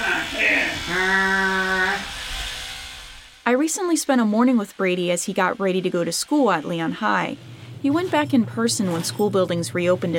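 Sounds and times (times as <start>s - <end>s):
electric toothbrush buzzing while brushing teeth: 0.0s - 10.1s
speech: 3.5s - 10.1s
soft scrubbing and rustling: 7.8s - 9.6s.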